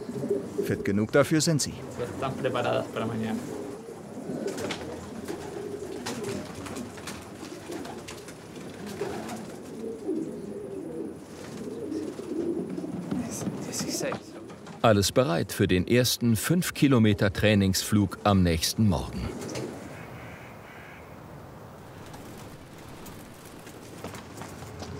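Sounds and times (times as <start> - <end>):
flock of homing pigeons cooing: 0.0 - 14.8, 19.0 - 24.9
speech: 0.7 - 3.6, 14.8 - 19.4
pigeon wings fluttering and rustling: 3.0 - 14.8, 21.7 - 24.9.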